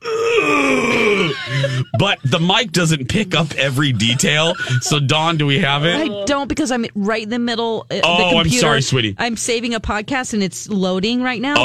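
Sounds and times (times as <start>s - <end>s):
voice imitating a groaning moan of a huge stretch in a radio studio: 0.0s - 2.0s
brief lower grunt: 0.0s - 2.2s
speech: 0.5s - 11.6s
laughter: 0.8s - 6.4s.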